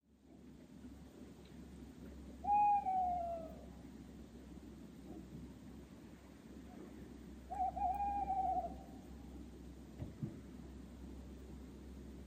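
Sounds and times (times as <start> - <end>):
tawny owl giving long steady hoots: 2.4 - 3.7, 7.5 - 9.4.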